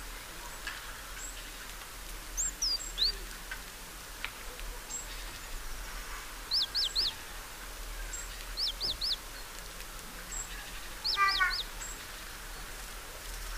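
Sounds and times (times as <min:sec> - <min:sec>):
constant low hiss: 0:00.0 - 0:13.5
great tit calling with brief high notes: 0:02.4 - 0:03.2, 0:06.4 - 0:07.2, 0:08.1 - 0:09.2, 0:10.3 - 0:12.0.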